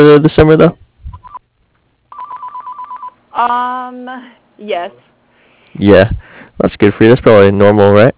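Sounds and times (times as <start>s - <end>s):
speech: 0.0s - 0.9s, 3.4s - 5.1s, 5.7s - 8.1s
electronic telephone ring tone through a phone line: 1.1s - 1.4s, 2.1s - 3.2s.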